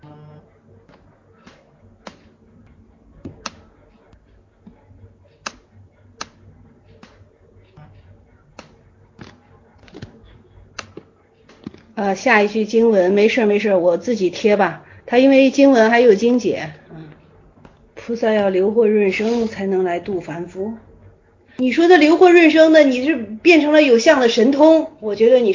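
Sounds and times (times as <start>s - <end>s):
steady low hum: 0.0s - 25.5s
broken computer mouse clicking and scrolling: 3.2s - 10.2s, 10.8s - 12.0s
speech: 12.0s - 16.8s, 18.1s - 20.9s, 21.6s - 25.5s.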